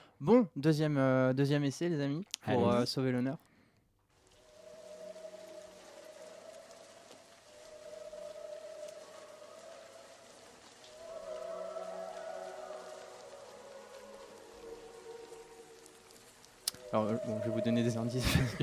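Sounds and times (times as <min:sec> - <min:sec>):
speech: 0:00.2 - 0:03.5, 0:16.9 - 0:18.6
steady rain on a rooftop: 0:04.1 - 0:18.6
long wavering tonal moans: 0:04.4 - 0:18.6
laughter: 0:18.1 - 0:18.6.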